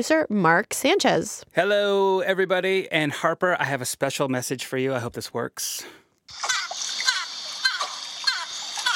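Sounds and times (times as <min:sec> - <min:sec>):
speech: 0:00.0 - 0:06.6
dolphin chirping squeaks and whistles: 0:06.3 - 0:08.9
watery hiss: 0:06.3 - 0:08.9.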